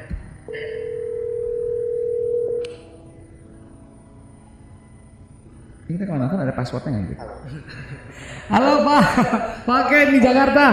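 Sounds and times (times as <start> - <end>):
telephone dial tone while placing a call: 0.6 - 2.6
speech: 5.9 - 10.7
laughter: 7.3 - 9.7.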